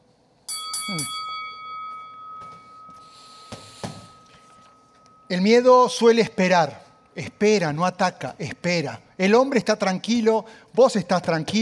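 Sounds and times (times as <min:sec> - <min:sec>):
noise: 0:00.0 - 0:11.5
boxing ring bell clanging: 0:00.5 - 0:09.5
speech: 0:00.9 - 0:01.2, 0:05.3 - 0:11.5.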